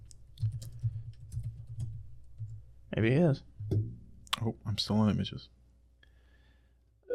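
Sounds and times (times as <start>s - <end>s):
typing a search on a computer keyboard: 0.0s - 2.6s
speech: 3.0s - 3.5s, 4.4s - 5.6s.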